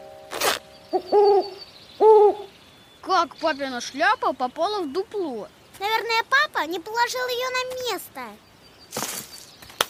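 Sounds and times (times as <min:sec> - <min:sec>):
owl in an old hat in a tree hollow hooting: 0:00.3 - 0:02.5
speech: 0:00.9 - 0:01.6, 0:03.1 - 0:08.5
brief rustling burst: 0:08.9 - 0:09.8.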